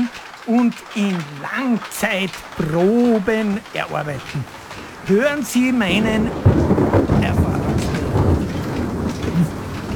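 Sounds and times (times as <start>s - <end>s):
rain-like hiss: 0.0s - 9.9s
speech: 0.5s - 7.5s
thunder rumbling during a thunderstorm: 2.2s - 9.9s.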